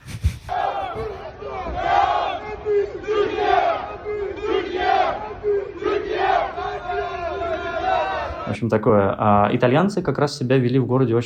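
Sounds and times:
crowd of football fans shouting and chanting in a fan zone: 0.5s - 8.6s
speech: 8.6s - 11.2s.

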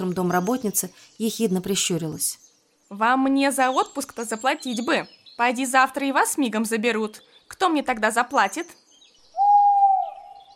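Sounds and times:
speech: 0.0s - 8.8s
owl hooting: 9.3s - 10.5s.

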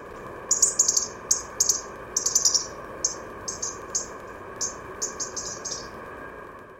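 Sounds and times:
steady low hum: 0.0s - 6.7s
European robin crackling call: 0.5s - 6.0s.

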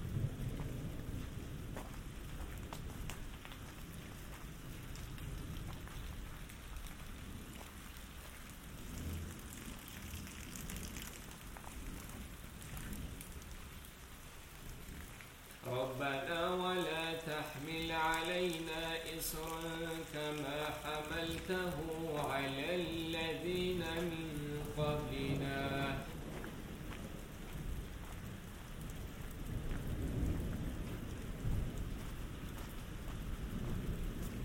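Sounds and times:
deep rolling thunder: 0.0s - 6.4s, 8.6s - 13.8s, 22.8s - 34.4s
rain hissing: 0.0s - 34.4s.

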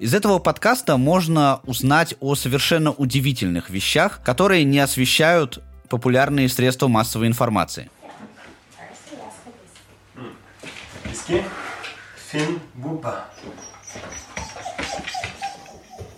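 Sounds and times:
speech: 0.0s - 8.0s, 11.2s - 11.6s, 12.3s - 14.2s
rustling movement and shuffling: 8.0s - 12.5s, 13.4s - 16.1s
border collie whimpering and yipping in Bergen Norway: 13.3s - 16.1s.

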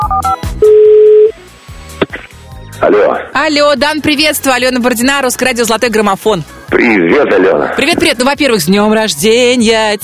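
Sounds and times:
telephone dialing tones: 0.0s - 1.3s
speech: 2.9s - 10.0s.

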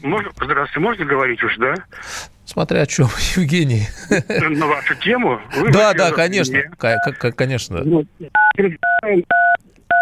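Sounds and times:
speech: 0.0s - 9.6s
laughter: 3.8s - 5.8s
telephone keypad DTMF dialing beeps: 8.4s - 10.0s.

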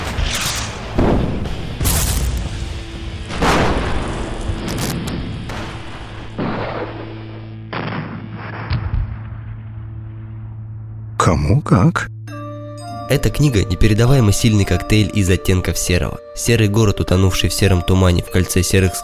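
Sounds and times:
heavy naval artillery gunfire booming: 0.8s - 10.2s
steady low rumble: 0.9s - 11.2s
speech: 11.5s - 12.2s, 13.1s - 19.0s.

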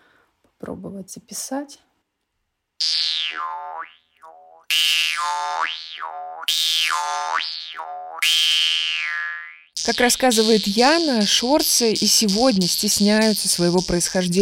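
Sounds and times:
speech: 0.6s - 1.9s, 4.7s - 14.3s
Yakut jaw harp vargan playing: 2.8s - 14.3s.

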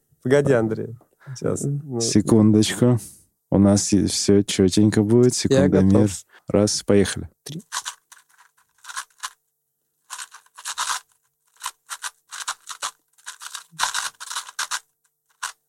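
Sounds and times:
speech: 0.2s - 7.8s
plastic Rubik's cube being turned rapidly: 7.5s - 9.4s, 10.1s - 15.6s.

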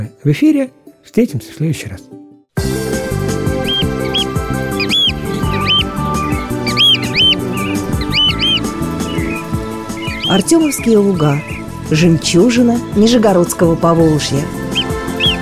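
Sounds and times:
speech: 0.0s - 2.9s, 10.3s - 14.6s
instrumental music: 2.6s - 15.4s
marsh sandpiper whistling calls: 3.3s - 13.3s, 14.1s - 15.4s.

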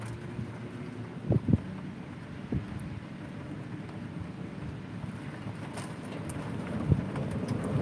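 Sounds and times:
steady rain: 0.0s - 7.8s
wind noise: 0.0s - 7.8s
thunder rumbling: 6.2s - 7.8s.

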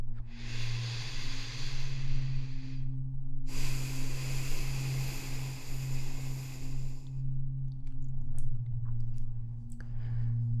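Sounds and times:
steady low humming drone: 0.0s - 10.5s
deep breath in and long full breath out: 0.2s - 7.4s, 9.8s - 10.5s.

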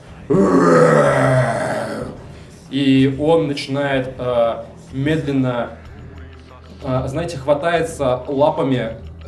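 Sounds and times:
speech: 0.3s - 0.7s, 2.7s - 5.8s, 6.8s - 9.2s
bear roaring across a valley: 0.3s - 2.3s.

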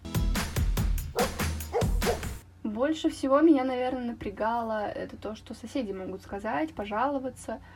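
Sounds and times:
dog barking: 1.1s - 2.3s
speech: 2.8s - 7.7s.

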